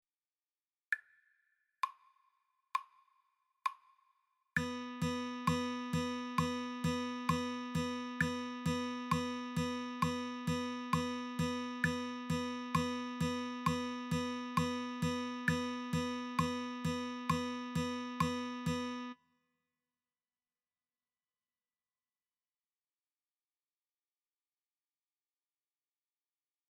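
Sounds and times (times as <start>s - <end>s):
guitar playing eighth notes: 4.6s - 19.2s.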